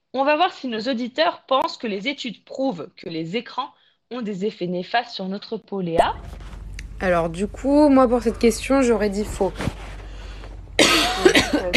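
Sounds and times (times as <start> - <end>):
speech: 0.1 - 6.4, 7.0 - 9.9
person coughing: 10.8 - 11.7
throat clearing: 10.8 - 11.7.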